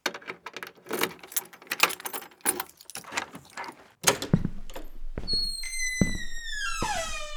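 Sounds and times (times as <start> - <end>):
keys jangling: 0.2 - 6.2
front door opening: 0.9 - 7.3
front door creaking: 4.0 - 7.3.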